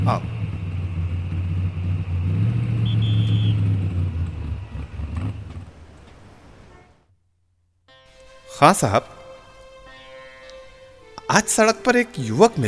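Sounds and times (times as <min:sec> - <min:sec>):
car engine running and driving: 0:00.0 - 0:06.7
speech: 0:00.1 - 0:00.3, 0:08.6 - 0:09.2, 0:11.3 - 0:12.6.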